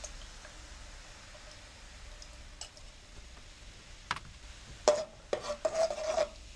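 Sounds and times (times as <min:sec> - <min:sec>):
stirring coconut cream with cane sugar scraping a pan: 0:04.8 - 0:06.5.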